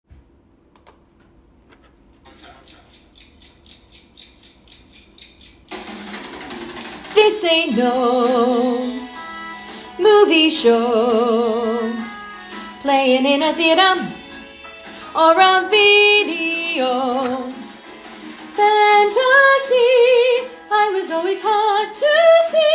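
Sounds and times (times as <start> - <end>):
melody with soprano voice: 7.2 - 9.2, 10.0 - 17.8, 18.5 - 22.7.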